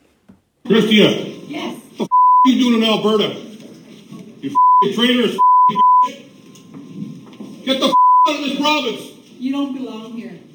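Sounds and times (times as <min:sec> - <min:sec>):
speech: 0:00.7 - 0:01.3, 0:02.0 - 0:03.5, 0:04.4 - 0:06.2, 0:07.7 - 0:10.4
censor bleeps over profanity: 0:02.1 - 0:02.6, 0:04.6 - 0:06.1, 0:07.9 - 0:08.4.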